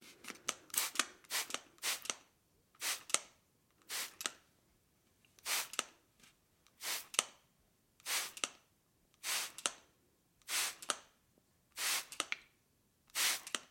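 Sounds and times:
spray bottle atomizer spraying: 0.8 - 2.1, 2.8 - 3.2, 3.9 - 4.2, 5.4 - 5.8, 6.8 - 7.2, 8.0 - 8.4, 9.2 - 9.6, 10.5 - 10.9, 11.8 - 12.2, 13.1 - 13.6.

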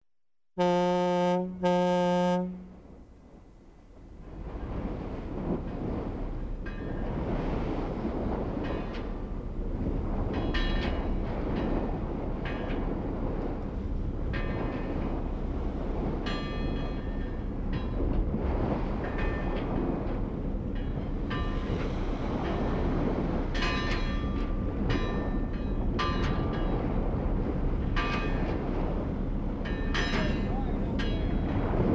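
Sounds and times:
ship horns in a port: 0.6 - 3.0
strong wind in a port: 0.6 - 31.9.

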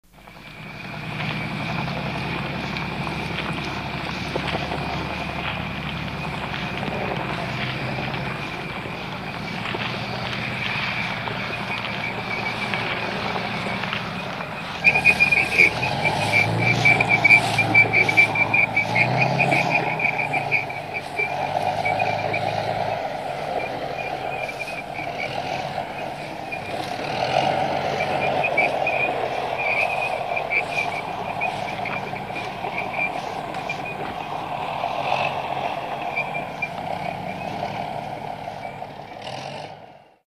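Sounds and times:
tank: 0.0 - 40.2
American helicopter in the background: 0.2 - 14.8.

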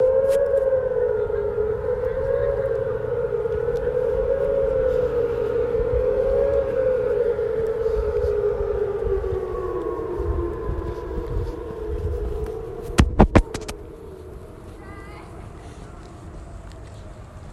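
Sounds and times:
tornado: 0.0 - 14.0.

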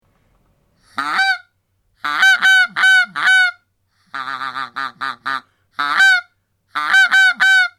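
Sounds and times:
single goose honking demandingly: 2.0 - 7.7.

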